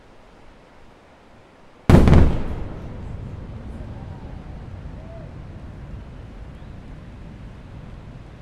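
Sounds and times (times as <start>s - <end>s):
rocket landing: 1.9s - 8.4s.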